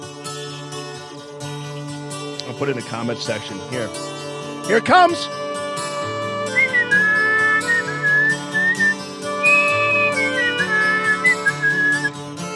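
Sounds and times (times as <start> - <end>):
instrumental backing track with steady rhythmic beats: 0.0 - 12.5
speech: 2.5 - 5.4
person whistling a tune: 6.3 - 12.2.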